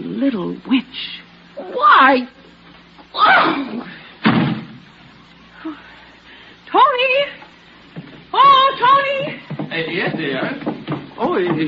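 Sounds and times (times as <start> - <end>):
speech: 0.2 - 2.4, 3.2 - 3.9, 6.7 - 7.4, 8.3 - 11.6
door slamming shut: 4.2 - 4.8.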